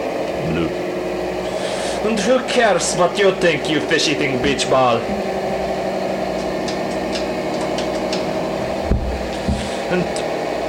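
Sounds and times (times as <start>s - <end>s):
spaceship anti-gravity engines droning hum after lift-off: 0.0s - 10.6s
speech: 0.5s - 0.8s, 2.0s - 5.4s, 9.9s - 10.2s
dull thumps: 8.8s - 9.7s.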